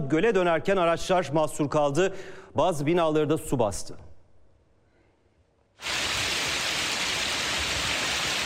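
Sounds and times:
speech: 0:00.1 - 0:04.1
hail during a storm: 0:05.8 - 0:08.4
heavy rain during a storm: 0:05.8 - 0:08.4.

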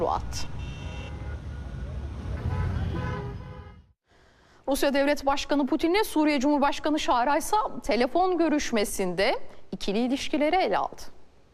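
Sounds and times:
speech: 0:00.0 - 0:00.6, 0:04.7 - 0:11.2
traffic of a street celebration convoy: 0:00.0 - 0:04.0
car horns honking in a street celebration convoy in Damascus: 0:00.5 - 0:03.9.

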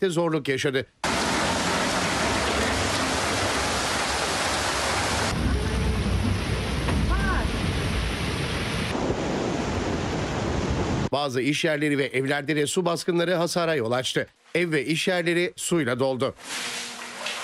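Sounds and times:
speech: 0:00.0 - 0:01.3, 0:11.2 - 0:16.9
heavy afternoon rain downpour in a city: 0:01.0 - 0:11.1.

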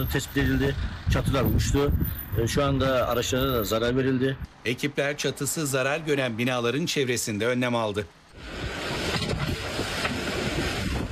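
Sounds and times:
strong gusting wind across a village: 0:00.0 - 0:04.5, 0:08.3 - 0:11.1
speech: 0:00.0 - 0:08.6.

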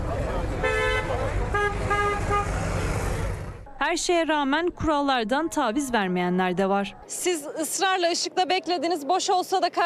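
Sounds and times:
megacity traffic rumble: 0:00.0 - 0:07.1
car horns honking as warnings: 0:00.6 - 0:02.9
speech: 0:03.8 - 0:09.8.

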